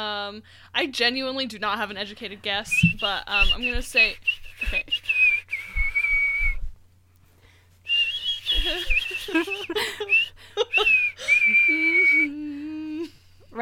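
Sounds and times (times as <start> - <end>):
speech: 0.0 - 5.1, 8.6 - 11.0
person whistling a song melody: 2.7 - 6.7, 7.9 - 12.8
laughter: 8.6 - 11.0.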